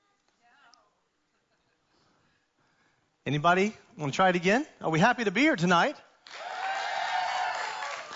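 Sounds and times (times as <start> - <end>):
speech: 3.3 - 6.4
audience applause: 6.2 - 8.1
audience cheering and whooping: 6.3 - 8.1.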